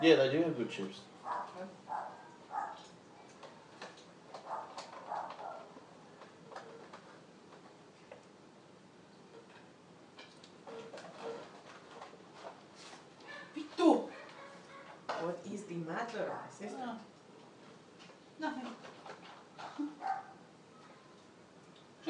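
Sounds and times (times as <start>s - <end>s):
speech: 0.0s - 2.1s, 15.2s - 17.1s, 18.4s - 18.9s
dog barking: 1.2s - 2.9s, 4.4s - 5.8s, 10.7s - 12.1s, 13.3s - 15.0s, 20.0s - 20.4s.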